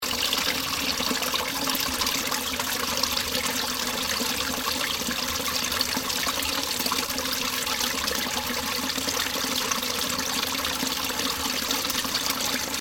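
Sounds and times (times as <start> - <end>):
water flowing in a drainage channel: 0.0 - 12.7.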